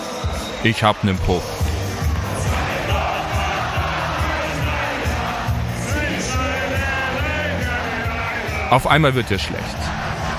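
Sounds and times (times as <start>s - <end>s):
crowd cheering and yelling in a beer tent: 0.0s - 10.3s
speech: 0.6s - 1.6s, 8.7s - 10.0s
band playing steady thumping music: 1.4s - 10.3s
big crowd in a beer tent bawling along to a song: 1.7s - 8.7s, 9.7s - 10.3s.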